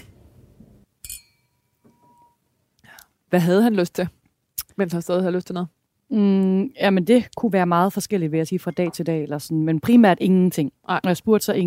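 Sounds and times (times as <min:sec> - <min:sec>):
glasses clinking in a toast: 0:01.0 - 0:02.4
speech: 0:03.3 - 0:04.2, 0:04.8 - 0:11.6.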